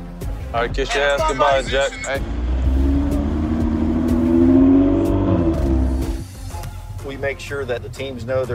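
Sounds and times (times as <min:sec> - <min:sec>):
speech: 0:00.5 - 0:02.4, 0:07.1 - 0:08.5
NASCAR pace car engine in Las Vegas revving and accelerating: 0:01.4 - 0:06.4.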